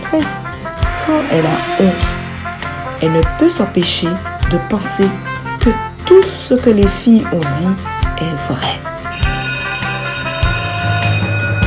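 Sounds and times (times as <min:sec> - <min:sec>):
speech: 0:00.1 - 0:02.2, 0:03.0 - 0:09.3
school bell ringing at the end of recess: 0:09.1 - 0:11.6.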